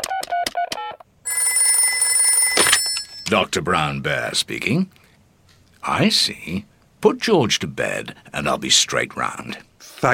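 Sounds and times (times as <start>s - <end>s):
telephone ringing during a call to the doctor: 1.3s - 3.5s
speech: 3.3s - 5.0s, 5.8s - 10.1s.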